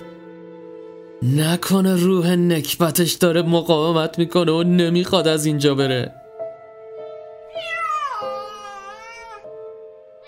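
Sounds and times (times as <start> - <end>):
speech: 1.2 - 6.2
cat meowing: 7.5 - 9.5.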